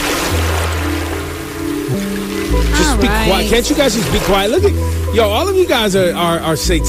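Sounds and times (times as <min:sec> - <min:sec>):
stream water trickling: 0:00.0 - 0:06.7
calm relaxation music: 0:00.0 - 0:06.8
long sustained oboe tones: 0:02.6 - 0:04.0
speech: 0:03.0 - 0:06.8.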